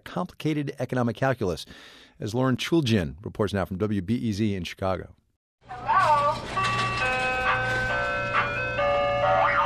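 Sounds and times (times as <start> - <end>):
speech: 0.2 - 5.9
ice cream truck jingle with a bright chiming tune: 5.7 - 9.6.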